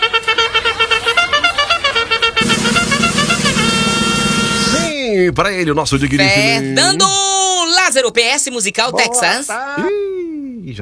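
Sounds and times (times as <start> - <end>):
short loud horn blasts merging into a sustained honk: 0.0 - 5.0
speech: 5.3 - 10.0.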